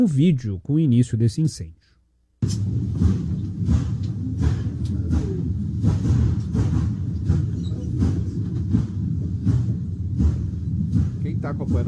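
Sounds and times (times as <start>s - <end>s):
speech: 0.0s - 1.8s, 2.4s - 3.8s, 11.5s - 11.8s
train rumbling past: 2.4s - 11.8s.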